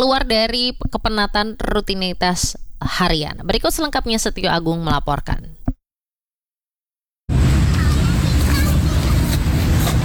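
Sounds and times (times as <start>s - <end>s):
speech: 0.0s - 5.6s
cars and motorcycles passing: 7.3s - 10.0s.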